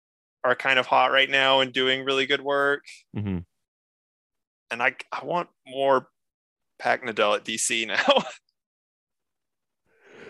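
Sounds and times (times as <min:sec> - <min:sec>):
speech: 0:00.4 - 0:03.5, 0:04.7 - 0:06.1, 0:06.8 - 0:08.4
person yawning: 0:03.2 - 0:03.4.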